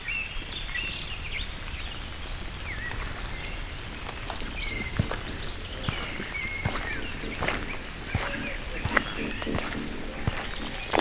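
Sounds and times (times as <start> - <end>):
birds chirping and twittering: 0.6 - 10.9
sharp irregular taps: 4.4 - 10.9.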